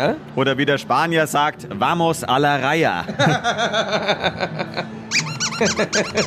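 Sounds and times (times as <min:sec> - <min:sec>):
speech: 0:00.0 - 0:06.2
laughter: 0:03.0 - 0:06.2
worn squeaky hot dog toy squeaking hoarsely: 0:05.1 - 0:06.2.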